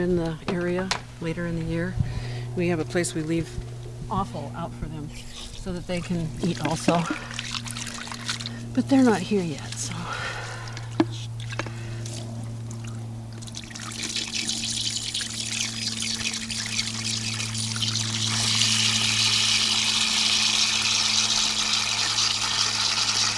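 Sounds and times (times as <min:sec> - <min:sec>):
speech: 0:00.0 - 0:07.4, 0:08.8 - 0:10.1
low mechanical hum: 0:00.0 - 0:23.3
drinking water pouring into a pan: 0:13.4 - 0:23.3.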